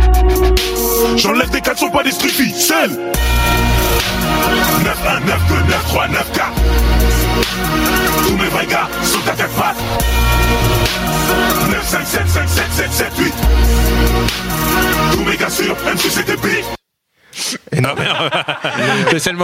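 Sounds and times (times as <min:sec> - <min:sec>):
heavy booming bass line of a rap track from a film: 0:00.0 - 0:02.1, 0:03.2 - 0:15.6
man rapping in French over the beat: 0:01.0 - 0:03.3, 0:04.0 - 0:16.8
speech: 0:01.2 - 0:13.4, 0:14.2 - 0:16.8, 0:17.4 - 0:19.4
laughter: 0:17.4 - 0:19.4.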